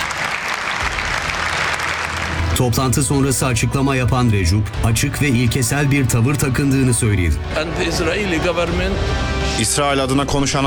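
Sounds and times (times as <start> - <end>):
audience applauding in a congress hall: 0.0 - 3.0
speech: 2.6 - 10.6.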